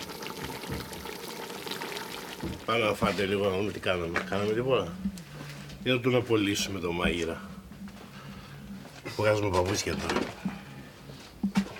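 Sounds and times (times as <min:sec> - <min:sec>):
water poured into a cooking pot holding passata: 0:00.0 - 0:03.4
speech: 0:02.4 - 0:05.1, 0:05.8 - 0:07.5, 0:09.2 - 0:10.4.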